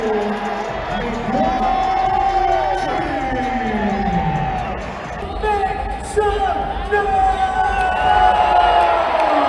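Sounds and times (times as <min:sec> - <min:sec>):
whoops and shouting voices in a basketball arena crowd: 0:00.0 - 0:04.8, 0:07.0 - 0:09.4
large indoor arena crowd cheering at an NBA basketball game: 0:00.0 - 0:09.4.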